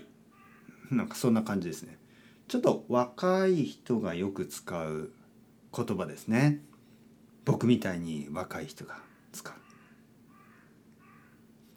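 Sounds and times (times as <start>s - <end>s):
low hum: 0.0s - 11.7s
crow cawing: 0.3s - 0.9s, 8.9s - 11.5s
speech: 0.9s - 6.7s, 7.4s - 9.6s.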